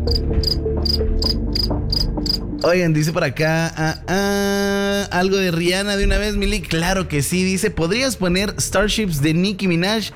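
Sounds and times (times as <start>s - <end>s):
crickets chirping sound effect: 0.0s - 2.7s
speech: 2.6s - 10.1s.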